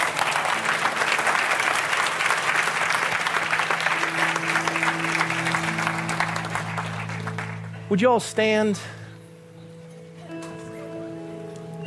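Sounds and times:
congregation clapping: 0:00.0 - 0:08.8
sustained low keyboard tone: 0:03.9 - 0:11.8
speech: 0:07.9 - 0:09.0.

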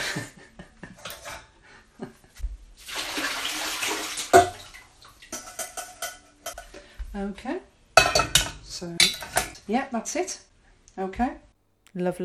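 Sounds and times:
speech: 0:00.2 - 0:00.4, 0:07.2 - 0:07.7, 0:08.8 - 0:12.2
splashing as mushrooms are lifted out of a bowl of cold water: 0:02.8 - 0:06.6.

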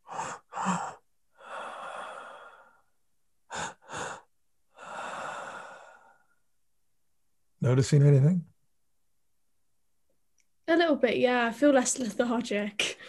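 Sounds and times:
breathing through the mouth in a breathwork pattern: 0:00.0 - 0:02.9, 0:03.5 - 0:06.4
speech: 0:07.6 - 0:08.5, 0:11.0 - 0:12.9.

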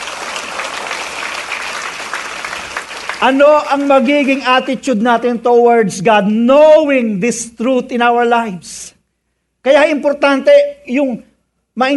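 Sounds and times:
church congregation applauding: 0:00.0 - 0:04.7
speech: 0:03.2 - 0:09.0, 0:09.6 - 0:11.9.

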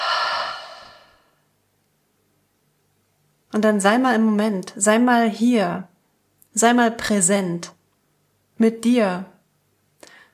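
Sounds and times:
deep airy exhale during a guided breathing exercise: 0:00.0 - 0:01.4
speech: 0:03.5 - 0:05.9, 0:06.6 - 0:07.8, 0:08.6 - 0:09.3.

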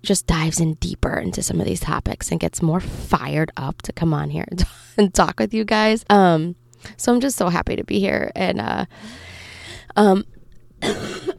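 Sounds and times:
speech: 0:00.0 - 0:11.3
person coughing while recording themselves talking: 0:10.8 - 0:11.3.

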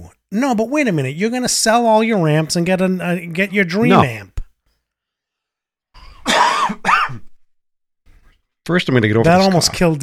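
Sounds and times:
speech: 0:00.3 - 0:04.3, 0:08.7 - 0:10.0
man coughing: 0:06.2 - 0:07.3.

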